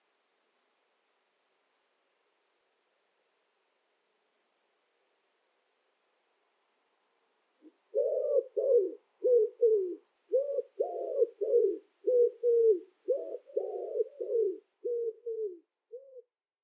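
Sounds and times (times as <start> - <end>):
common wood pigeon cooing: 7.6 - 16.3.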